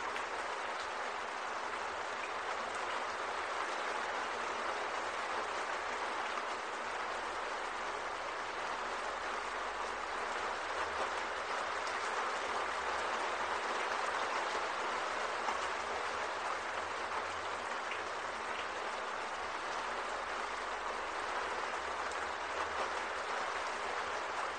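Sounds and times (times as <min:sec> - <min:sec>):
heavy rain drumming on a roof: 0:00.0 - 0:24.5.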